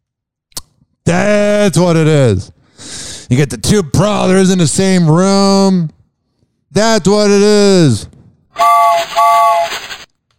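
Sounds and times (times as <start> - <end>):
speech: 1.1 - 6.0, 6.7 - 9.9
train whistle blasts: 8.6 - 10.0.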